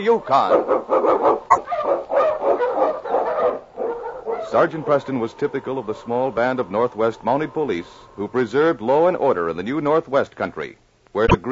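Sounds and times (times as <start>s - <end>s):
speech: 0.0s - 1.4s, 4.4s - 11.5s
husky sled dog barking and yipping: 0.4s - 4.8s.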